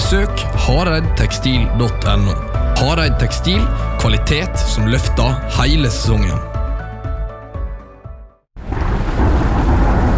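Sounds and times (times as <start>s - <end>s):
music playing: 0.0s - 8.4s
speech: 0.1s - 6.6s
deep rumble of thunder: 8.6s - 10.1s
heavy rain: 8.6s - 10.1s.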